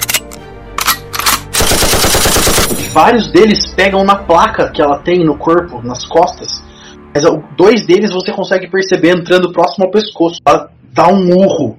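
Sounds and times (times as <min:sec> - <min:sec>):
loud separate gunshots: 0:01.3 - 0:03.0
rapid automatic fire toward a creature: 0:01.4 - 0:03.0
speech: 0:02.9 - 0:11.7.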